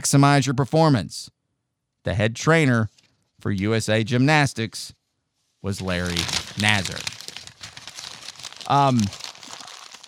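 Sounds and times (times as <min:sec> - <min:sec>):
speech: 0:00.0 - 0:01.4, 0:02.0 - 0:05.0, 0:05.6 - 0:07.1, 0:08.7 - 0:09.2
paper being crumpled up: 0:05.7 - 0:10.0.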